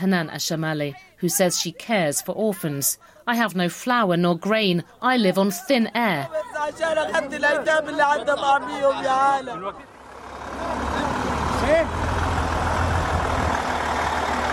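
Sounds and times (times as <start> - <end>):
speech: 0.0 - 9.9, 11.7 - 12.1
heavy lorries moving goods at Kerem Shalom border crossing: 6.6 - 14.5.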